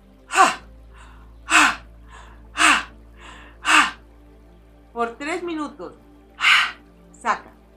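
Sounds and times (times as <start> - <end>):
person breathing forcefully through the mouth: 0.3 - 4.0, 6.4 - 6.8
speech: 5.0 - 6.1.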